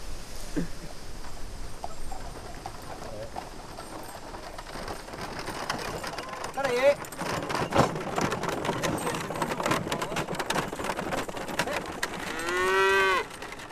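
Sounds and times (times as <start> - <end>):
speech: 0.6 - 0.8
steady patter of rain: 0.9 - 13.7
single cow mooing: 12.3 - 13.3.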